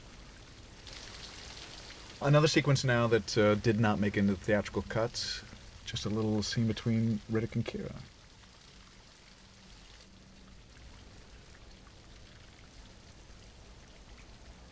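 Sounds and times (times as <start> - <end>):
heavy rain downpour: 0.0 - 8.5
speech: 2.2 - 8.1.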